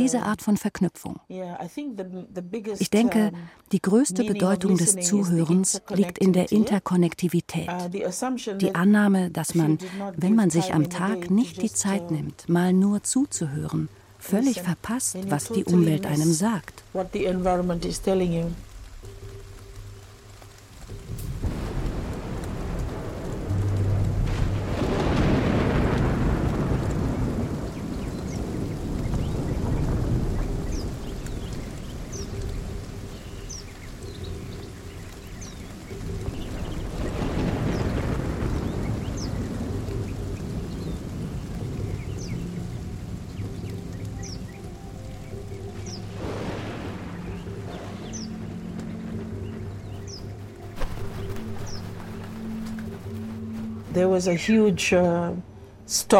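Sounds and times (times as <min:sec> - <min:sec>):
speech: 0:00.0 - 0:18.7, 0:54.2 - 0:56.1
rushing rain: 0:02.8 - 0:54.9
steady wind: 0:15.1 - 0:56.1
deep rolling rumbles of thunder: 0:21.0 - 0:53.8.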